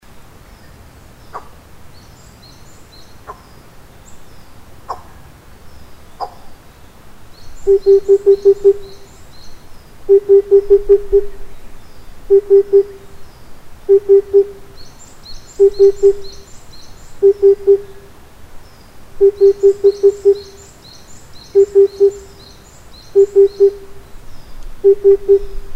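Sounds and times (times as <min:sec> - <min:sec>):
Oriental cuckoo calling: 0:07.6 - 0:09.2, 0:10.1 - 0:11.5, 0:12.3 - 0:13.2, 0:13.9 - 0:14.8, 0:15.5 - 0:16.5, 0:17.2 - 0:18.1, 0:19.2 - 0:20.7, 0:21.4 - 0:22.4, 0:23.1 - 0:24.1, 0:24.8 - 0:25.7.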